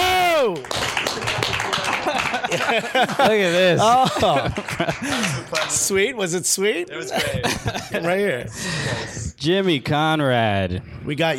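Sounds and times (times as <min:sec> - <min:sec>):
live audience applause greeting a guest on stage: 0:00.3 - 0:05.9
laughter: 0:01.2 - 0:05.9, 0:07.0 - 0:09.2
speech: 0:02.5 - 0:11.3.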